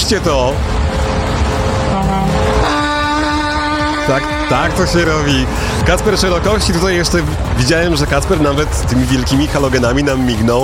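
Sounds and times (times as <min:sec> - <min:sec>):
big truck engine rumbling: 0:00.0 - 0:10.6
speech: 0:00.1 - 0:00.8, 0:04.1 - 0:10.6
big truck horn blaring: 0:00.6 - 0:07.1.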